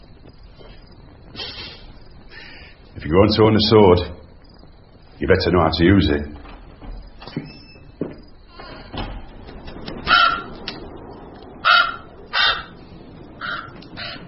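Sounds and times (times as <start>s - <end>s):
rustling outdoor background: 0.0s - 14.2s
speech: 3.0s - 4.2s, 5.2s - 6.4s
crow cawing: 10.0s - 10.8s, 11.6s - 14.2s.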